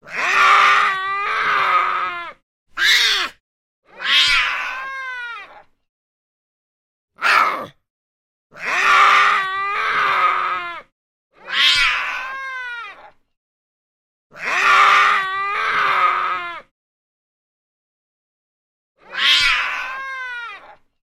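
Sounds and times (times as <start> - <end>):
tiger cub crying: 0.0 - 5.7, 8.5 - 13.2, 14.3 - 16.7, 19.0 - 20.8.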